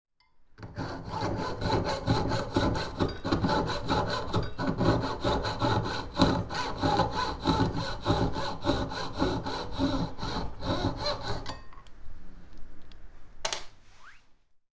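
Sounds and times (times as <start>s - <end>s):
coping saw sawing metal: 0.6s - 11.6s.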